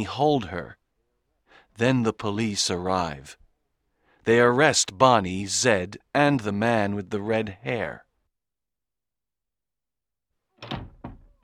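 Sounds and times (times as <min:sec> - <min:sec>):
speech: 0:00.0 - 0:00.8, 0:01.8 - 0:03.4, 0:04.2 - 0:08.0
locked fire exit door pushed and rattled against its lock: 0:10.6 - 0:11.4.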